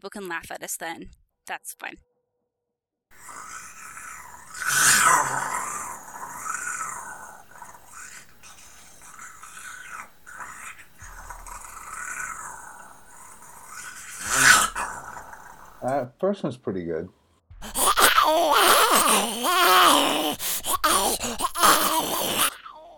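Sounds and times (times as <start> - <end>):
speech: 0.0 - 2.1, 15.8 - 17.2
person imitating zombie growls and groans: 3.2 - 16.0, 17.6 - 22.9.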